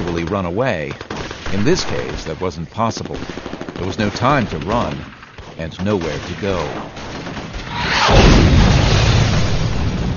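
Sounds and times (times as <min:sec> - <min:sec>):
speech: 0:00.3 - 0:07.3
artillery smoke round striking the top of a berm: 0:07.6 - 0:10.1.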